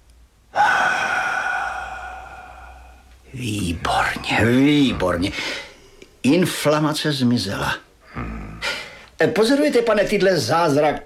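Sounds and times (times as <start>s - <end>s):
loud drawn-out voiced exhale on command during a medical check-up: 0.5s - 3.2s
speech: 3.3s - 5.6s, 6.2s - 7.8s, 9.2s - 11.0s.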